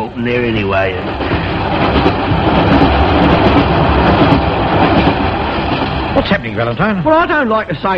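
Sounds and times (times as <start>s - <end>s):
steam train pulling empty coaches along the rails: 0.0s - 7.9s
speech: 0.2s - 3.0s, 4.1s - 5.3s, 6.1s - 7.9s.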